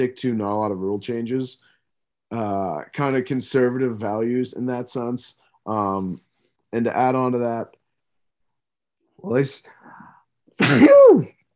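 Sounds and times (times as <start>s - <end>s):
speech: 0.0s - 1.7s, 2.3s - 7.8s, 9.2s - 10.0s, 10.6s - 11.4s
person sneezing: 10.6s - 11.3s.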